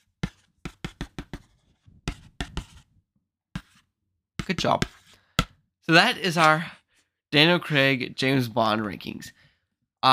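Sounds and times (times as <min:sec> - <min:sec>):
stylus scratching on a writing tablet as words are written: 0:00.0 - 0:02.9, 0:03.6 - 0:05.2
speech: 0:04.6 - 0:05.0, 0:05.9 - 0:09.4.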